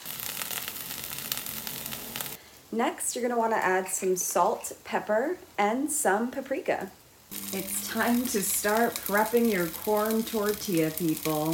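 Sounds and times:
eggs sizzling in a frying pan with sriracha sauce: 0:00.0 - 0:02.5, 0:05.4 - 0:11.5
speech: 0:02.7 - 0:11.5.

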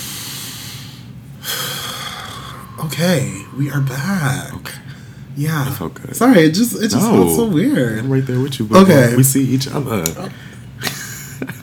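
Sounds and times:
person taking a quick breath in and out: 0:00.0 - 0:02.8
speech: 0:02.8 - 0:10.5.

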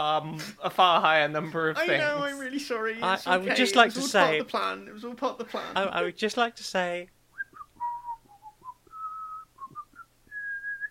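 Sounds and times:
speech: 0:00.0 - 0:07.2
casual meandering whistled tune: 0:07.4 - 0:10.8.

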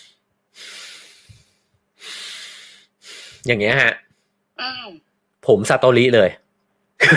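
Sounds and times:
deep breaths drawn in through the nose: 0:00.0 - 0:03.5
speech: 0:03.4 - 0:04.0, 0:04.6 - 0:06.4.

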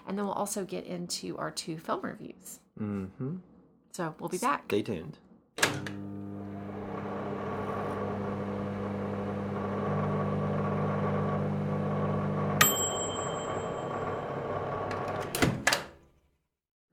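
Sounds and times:
speech: 0:00.1 - 0:06.1
microwave oven humming as it cooks: 0:05.6 - 0:15.4
bright microwave oven ding: 0:12.6 - 0:15.2.

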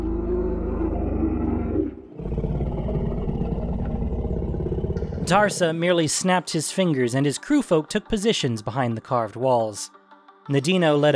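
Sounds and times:
deep creature roar and growling bellow: 0:00.0 - 0:05.8
speech: 0:05.3 - 0:11.1.

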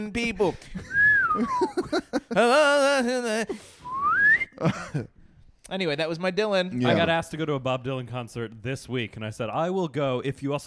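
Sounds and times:
speech: 0:00.0 - 0:03.8, 0:04.6 - 0:10.6
slide whistle swooping: 0:00.9 - 0:01.5, 0:03.8 - 0:04.6.

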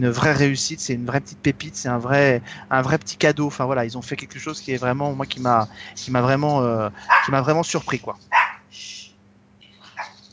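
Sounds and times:
speech: 0:00.0 - 0:09.0
dog barking: 0:07.0 - 0:07.5, 0:08.3 - 0:08.7, 0:09.9 - 0:10.2.

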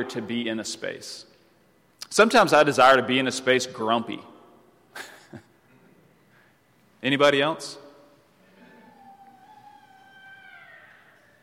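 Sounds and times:
speech: 0:00.0 - 0:01.3, 0:02.0 - 0:04.3, 0:05.0 - 0:05.5, 0:07.0 - 0:07.8
cat meowing: 0:09.0 - 0:11.4.

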